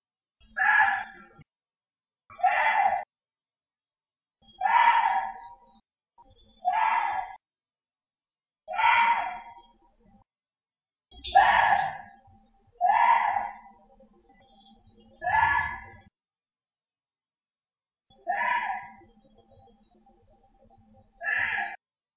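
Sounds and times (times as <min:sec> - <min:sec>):
Korean deer giving harsh scream-like cries: 0:00.6 - 0:01.2, 0:02.3 - 0:03.0, 0:04.6 - 0:05.4, 0:06.6 - 0:07.4, 0:08.7 - 0:09.5, 0:11.2 - 0:12.1, 0:12.8 - 0:13.7, 0:15.2 - 0:16.0, 0:18.2 - 0:19.0, 0:21.2 - 0:21.8.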